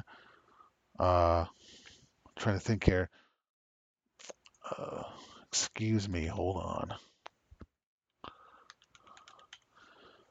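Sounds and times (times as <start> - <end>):
speech: 1.0 - 1.8, 2.4 - 3.2, 4.7 - 7.1
soft typing on a computer keyboard: 8.6 - 9.7.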